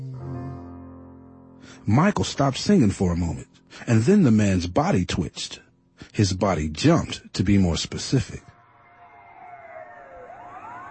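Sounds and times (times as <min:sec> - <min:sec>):
speech: 0:01.8 - 0:08.5
ambulance siren wailing: 0:08.8 - 0:10.8.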